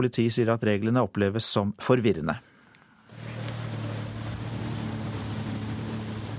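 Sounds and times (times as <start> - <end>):
speech: 0.0 - 2.5
wind: 2.7 - 6.3
jet skis speeding through waves off Brevik on the Telemark coast of Norway: 3.1 - 6.3
rushing water: 3.1 - 6.3.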